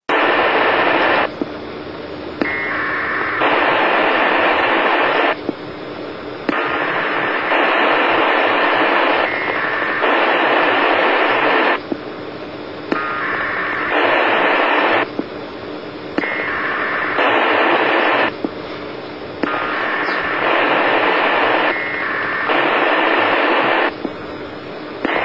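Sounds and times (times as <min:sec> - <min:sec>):
packet radio data tones from a satellite: 0:00.1 - 0:01.6, 0:02.3 - 0:25.2.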